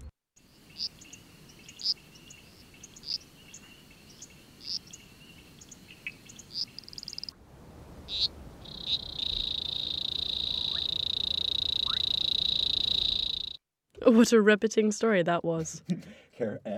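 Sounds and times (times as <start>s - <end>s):
toads calling in chorus on spring migration: 0.4s - 7.3s, 8.1s - 13.6s
speech: 14.1s - 16.7s.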